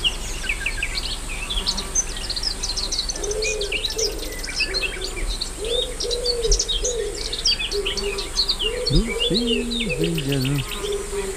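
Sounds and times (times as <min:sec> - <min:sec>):
dense chorus of small songbirds: 0:00.0 - 0:11.3
steady insect buzzing: 0:00.0 - 0:11.3
wood pigeon cooing in five-note phrases in a tangled thicket at La Rocina, Doñana: 0:03.2 - 0:11.3.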